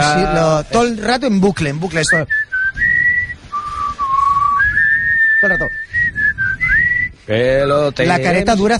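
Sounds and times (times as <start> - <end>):
speech: 0.0 - 2.9, 5.4 - 6.1, 7.3 - 8.7
person whistling a TV weather forecast theme tune: 2.2 - 7.2.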